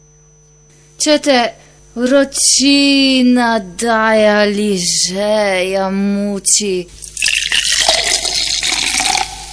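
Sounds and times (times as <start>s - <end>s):
speech: 1.0s - 7.3s
cold fizzy drink being poured, bubbling and fizzing: 7.0s - 9.5s.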